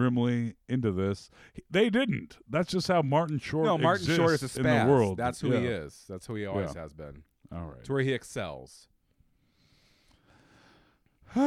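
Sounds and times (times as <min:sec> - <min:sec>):
speech: 0:00.0 - 0:08.9, 0:11.3 - 0:11.4
heavy breathing: 0:09.4 - 0:11.4
loud voiced gasp or sigh: 0:09.6 - 0:11.4.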